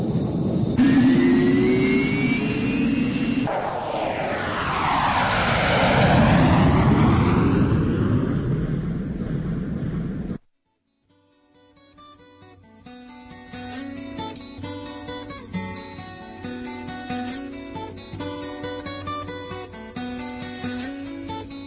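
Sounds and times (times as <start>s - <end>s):
airplane engine roaring while taking off from a runway at Toruń: 0.0s - 10.4s.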